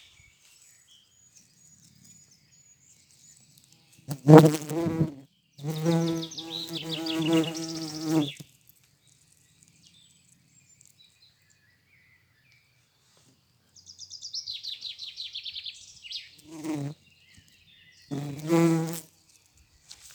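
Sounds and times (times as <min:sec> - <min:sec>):
yellow-headed bumblebee buzzing: 0:04.1 - 0:08.5, 0:16.5 - 0:17.0, 0:18.1 - 0:19.1.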